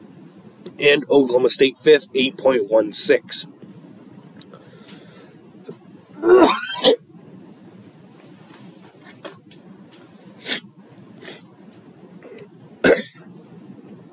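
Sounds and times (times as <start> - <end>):
speech: 0.8 - 3.6
phlegmy coughing from a congested throat: 6.2 - 7.0, 12.2 - 13.3.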